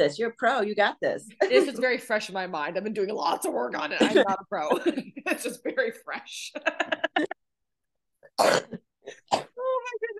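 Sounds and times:
speech: 0:00.0 - 0:07.4, 0:08.4 - 0:10.1
short throaty sounds: 0:08.2 - 0:09.8
harsh coughs: 0:08.4 - 0:09.5.

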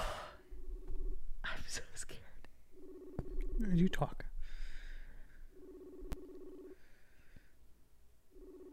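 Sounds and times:
phone's outgoing ringback tone heard through a handset: 0:00.4 - 0:01.3, 0:02.7 - 0:06.8, 0:08.3 - 0:08.7
speech: 0:01.4 - 0:02.2, 0:03.6 - 0:04.3.

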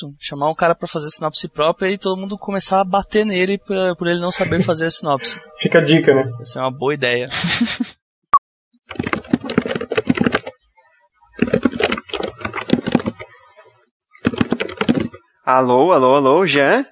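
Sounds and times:
speech: 0:00.0 - 0:08.0, 0:15.5 - 0:16.9
laughter: 0:04.1 - 0:05.9, 0:07.2 - 0:08.0
typing on a computer keyboard: 0:08.9 - 0:10.6, 0:11.4 - 0:13.4, 0:14.2 - 0:15.2.

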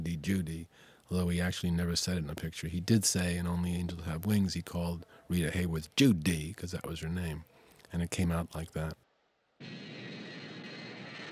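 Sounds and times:
speech: 0:00.2 - 0:09.0
airplane engine roar powering up for takeoff: 0:09.6 - 0:11.3.

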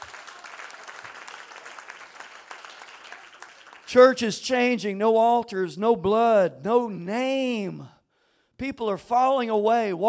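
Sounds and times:
church audience clapping in praise: 0:00.0 - 0:04.0
speech: 0:03.9 - 0:08.0, 0:08.6 - 0:10.0.

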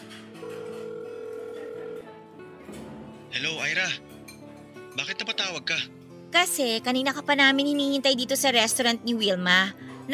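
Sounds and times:
electronic ringback tone on an outgoing phone call: 0:00.4 - 0:02.2
speech: 0:03.3 - 0:04.1, 0:05.0 - 0:10.1.

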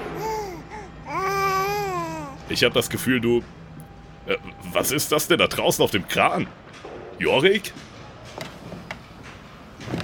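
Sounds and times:
baby babbling and cooing: 0:00.0 - 0:02.4
faint steady hum: 0:00.0 - 0:10.0
speech: 0:02.5 - 0:03.6, 0:04.3 - 0:07.9.

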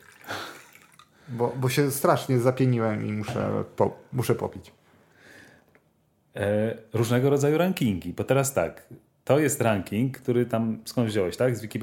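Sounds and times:
water pouring into a glass: 0:00.0 - 0:01.4
speech: 0:01.3 - 0:04.8, 0:06.4 - 0:11.8.

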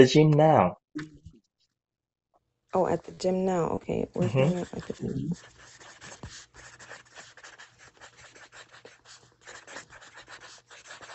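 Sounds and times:
speech: 0:00.0 - 0:01.2, 0:02.7 - 0:05.8
pen scratching across paper in fast handwriting: 0:04.2 - 0:11.1.

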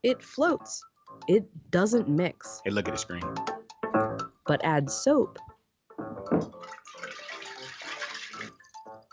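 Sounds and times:
speech: 0:00.0 - 0:05.5
liquid poured into water: 0:06.5 - 0:08.9.

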